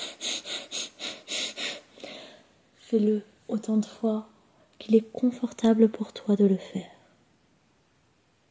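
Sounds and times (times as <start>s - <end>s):
breath-of-fire breathing with forced hissing exhales: 0.0s - 2.5s
speech: 2.9s - 7.0s.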